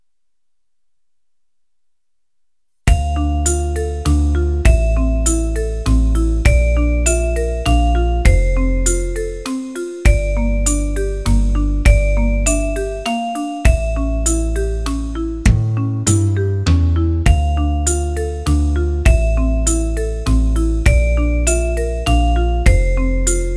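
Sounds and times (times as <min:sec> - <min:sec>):
waltz music: 0:02.9 - 0:23.5.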